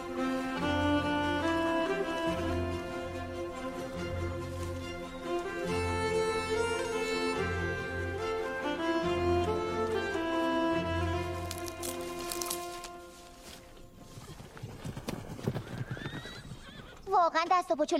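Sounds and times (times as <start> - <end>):
horse hooves clip-clopping at a steady walk: 0.0 - 17.2
horse neighing and whinnying: 15.4 - 17.1
speech: 17.4 - 17.9.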